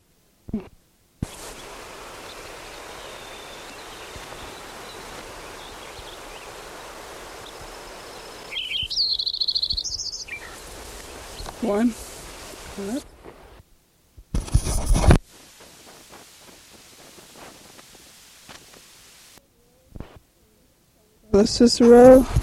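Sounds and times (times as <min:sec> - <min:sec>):
hiss: 0:00.0 - 0:22.4
speech: 0:00.5 - 0:00.8, 0:11.6 - 0:12.0, 0:12.8 - 0:13.1, 0:21.4 - 0:22.4
Lincoln's sparrow song: 0:01.2 - 0:13.2.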